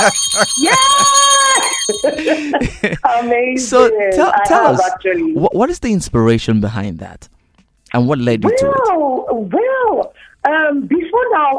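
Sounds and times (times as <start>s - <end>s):
person vocally imitating a ringing bell: 0.0s - 2.4s
laughter: 0.0s - 3.2s
speech: 0.0s - 11.5s.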